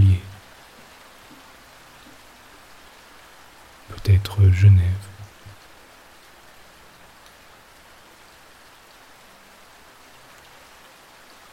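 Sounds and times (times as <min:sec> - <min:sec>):
steady rain falling on wet pavement: 0:00.0 - 0:04.6, 0:05.2 - 0:11.5
speech: 0:04.2 - 0:05.1.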